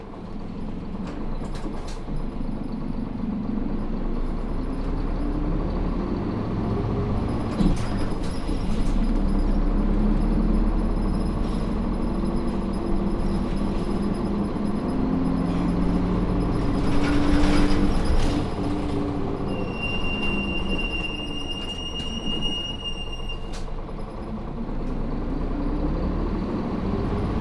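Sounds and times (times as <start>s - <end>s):
bus engine rumbling heard from inside: 0.0s - 27.3s.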